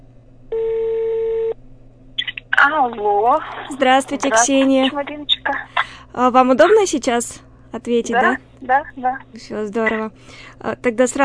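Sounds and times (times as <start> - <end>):
phone line hiss: 0.5 - 1.6
telephone ringback tone through a phone line: 0.5 - 1.6
speech: 2.6 - 11.2.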